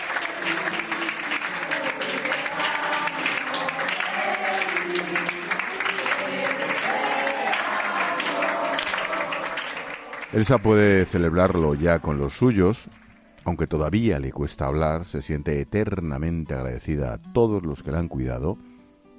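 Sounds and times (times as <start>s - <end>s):
several voices singing together: 0.0s - 12.7s
applause from hospital staff: 0.0s - 13.3s
speech: 10.3s - 18.7s.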